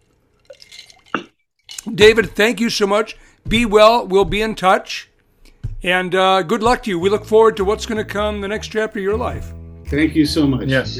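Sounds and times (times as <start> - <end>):
liquid pouring: 0.0 - 1.8
speech: 1.8 - 5.1, 5.8 - 10.9.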